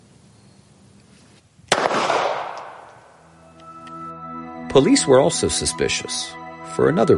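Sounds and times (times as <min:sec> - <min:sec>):
pistol shot: 0:01.7 - 0:03.1
speech: 0:04.8 - 0:07.1.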